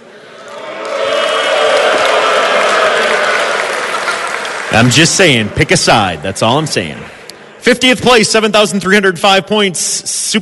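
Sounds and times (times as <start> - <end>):
live audience clapping: 0.5 - 7.2
speech: 4.8 - 10.4.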